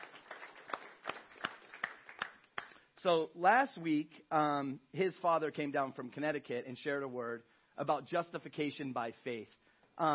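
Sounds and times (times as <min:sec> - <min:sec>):
audience applause: 0:00.0 - 0:02.7
speech: 0:03.0 - 0:10.1.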